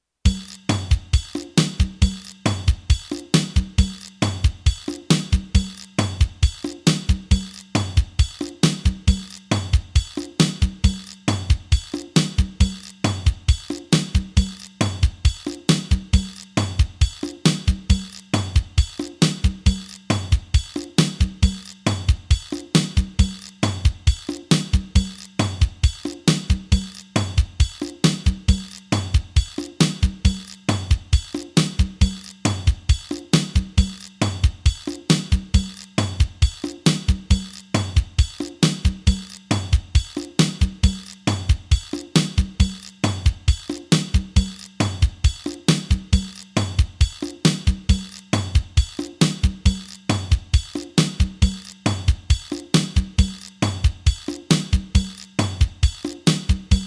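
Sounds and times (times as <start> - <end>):
fast Latin music: 0.3 - 56.8.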